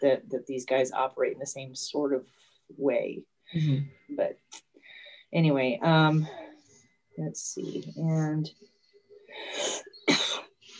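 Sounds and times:
speech: 0:00.0 - 0:04.7, 0:05.3 - 0:06.4, 0:07.2 - 0:08.7, 0:09.3 - 0:10.4
person coughing: 0:09.6 - 0:10.5.

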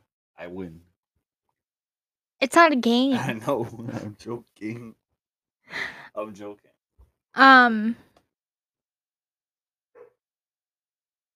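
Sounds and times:
speech: 0:00.4 - 0:00.9, 0:02.4 - 0:05.0, 0:05.7 - 0:06.7, 0:07.4 - 0:08.1
laughter: 0:03.1 - 0:04.8
dog bark drawn out into a whiny yelp: 0:09.9 - 0:10.2.

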